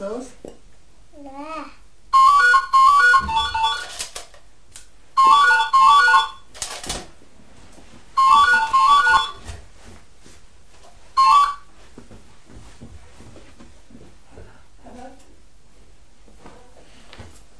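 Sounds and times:
speech: 0.1 - 0.5
phone ringtone playing a bright melodic electronic tune: 2.1 - 4.0, 5.2 - 6.5, 8.2 - 9.5, 11.2 - 11.7.

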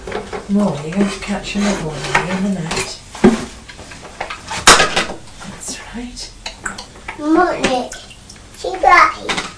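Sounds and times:
speech: 0.5 - 3.0, 6.0 - 6.3, 7.2 - 8.0, 8.6 - 9.5
water draining out of a bath: 6.5 - 9.3.

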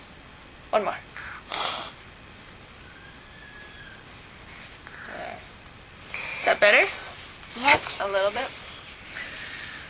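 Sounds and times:
speech: 0.7 - 1.1, 6.5 - 8.6
child having nose blown by an adult: 1.5 - 2.0.

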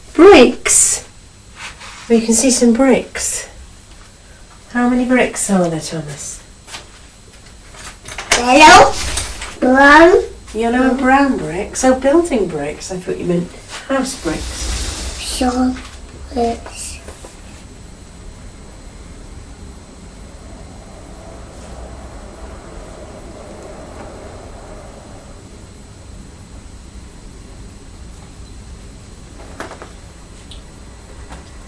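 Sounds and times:
speech: 0.2 - 1.1, 2.1 - 3.5, 4.7 - 6.4, 8.4 - 14.7, 15.4 - 16.8
train rumbling past: 8.6 - 28.2.

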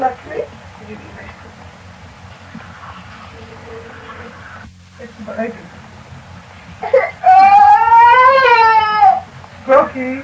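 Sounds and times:
speech: 5.3 - 5.7, 10.0 - 10.2
baby whimpering and wailing: 6.8 - 9.3.

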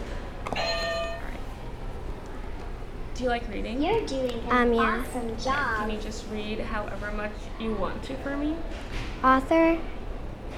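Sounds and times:
electronic buzzer beep from a buzzer being hit: 0.6 - 1.3
speech: 3.2 - 10.0.

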